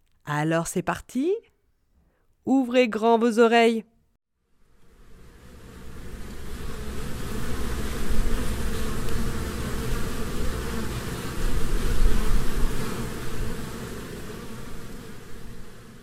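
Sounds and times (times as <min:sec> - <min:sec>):
speech: 0:00.3 - 0:01.5, 0:02.4 - 0:03.9
honeybee colony buzzing inside a hive: 0:04.6 - 0:16.0.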